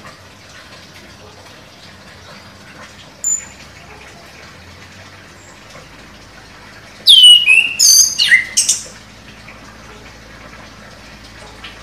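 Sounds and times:
orange-headed thrush giving loud slurred whistles and sharp high notes: 7.1s - 8.8s.

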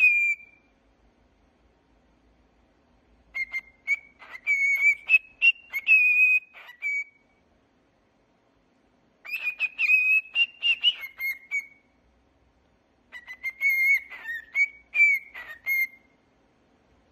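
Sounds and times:
cockatiel whistled song with clicky notes: 0.0s - 0.7s, 3.2s - 7.4s, 9.2s - 12.0s, 13.1s - 16.2s.

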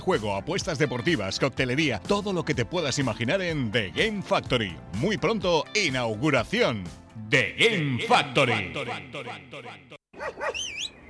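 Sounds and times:
speech: 0.0s - 10.9s
dog barking: 10.1s - 10.9s
dog yelping: 10.2s - 11.0s.

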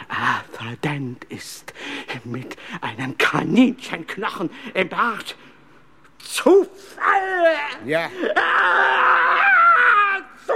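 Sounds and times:
speech: 0.6s - 5.5s, 6.2s - 9.2s
person screaming: 7.0s - 10.5s.

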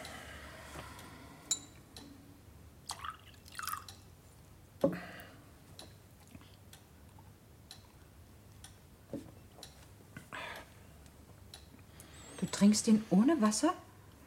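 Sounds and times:
whisky being poured, dribbling and dripping: 2.9s - 4.1s
speech: 12.6s - 13.9s.

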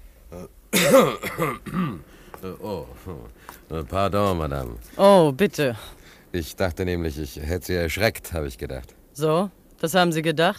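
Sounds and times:
speech: 0.3s - 10.5s
man coughing and clearing his throat: 0.4s - 3.3s.

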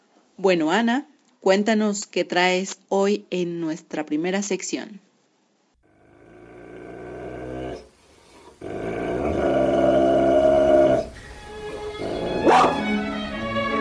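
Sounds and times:
speech: 0.4s - 5.1s
dogs barking and growling: 5.9s - 13.1s
dog yelping: 12.0s - 13.0s.

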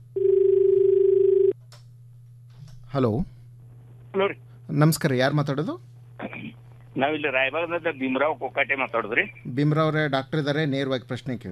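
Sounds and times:
steady telephone tone of an incoming call on a phone-in line: 0.1s - 1.6s
speech: 2.9s - 3.4s, 4.1s - 5.9s, 7.0s - 11.5s.

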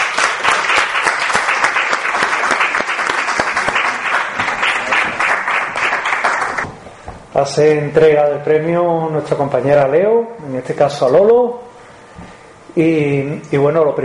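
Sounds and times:
audience applauding at an award presentation: 0.0s - 6.6s
speech: 7.4s - 11.6s, 12.8s - 14.0s.

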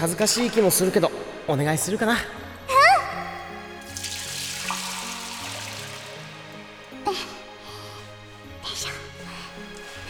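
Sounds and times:
speech: 0.0s - 2.4s
soft music: 0.0s - 10.0s
water poured while washing someone's back at a hot spring: 3.8s - 6.8s.

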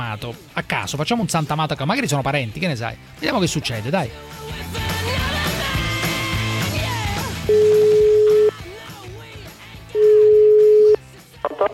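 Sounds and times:
music: 0.0s - 11.7s
speech: 0.1s - 5.0s
telephone line tones while a phone call is placed: 7.4s - 8.6s, 10.0s - 11.7s.

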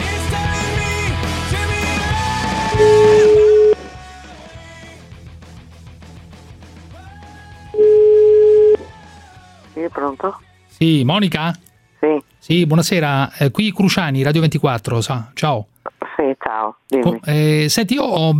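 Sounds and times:
music: 0.0s - 14.4s
telephone dial tone while placing a call: 7.8s - 8.8s
speech: 10.0s - 15.7s, 16.3s - 18.3s.

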